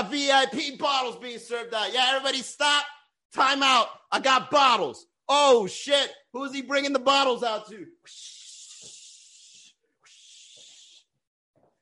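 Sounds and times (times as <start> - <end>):
speech: 0.0 - 8.4
bottle-service server shushing: 8.0 - 11.2.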